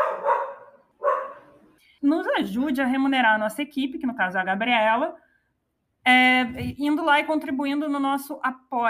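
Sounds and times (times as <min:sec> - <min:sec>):
dog barking in a home studio: 0:00.0 - 0:01.6
speech: 0:02.0 - 0:05.3, 0:06.0 - 0:08.8.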